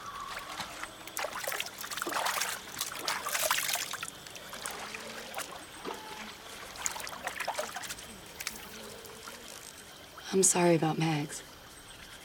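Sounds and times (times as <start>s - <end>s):
water trickling from a tapped tree spike: 1.1s - 10.0s
speech: 10.3s - 11.5s.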